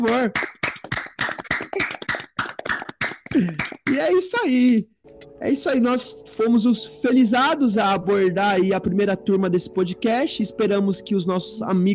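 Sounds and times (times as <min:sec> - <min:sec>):
speech: 0:00.0 - 0:00.6, 0:03.4 - 0:11.9
small group clapping hands: 0:00.0 - 0:04.8.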